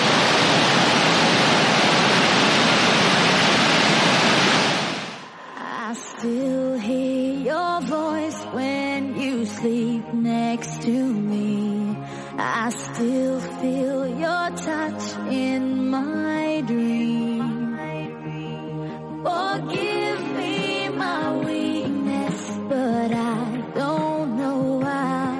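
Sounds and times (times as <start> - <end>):
105-metre waterfall crashing down: 0.0 - 5.3
music with singing: 5.3 - 25.3.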